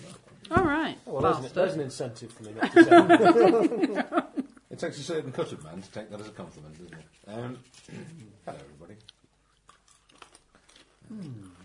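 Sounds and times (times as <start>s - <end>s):
speech: 1.1s - 9.2s, 11.1s - 11.6s
laughter: 2.6s - 4.6s
person munching popcorn: 7.7s - 11.6s.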